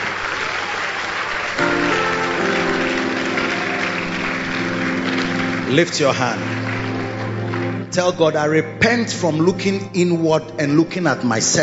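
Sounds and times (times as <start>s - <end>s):
audience clapping in church: 0.0s - 9.0s
sustained musical tones: 1.6s - 11.6s
speech: 5.7s - 6.8s, 7.9s - 11.6s.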